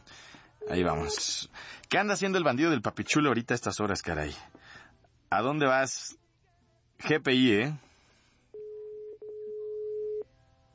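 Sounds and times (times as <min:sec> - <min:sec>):
faint hiss: 0:00.0 - 0:10.7
speech: 0:00.7 - 0:04.6, 0:05.3 - 0:06.2, 0:07.0 - 0:07.9
electronic telephone ringing tone: 0:08.6 - 0:10.3.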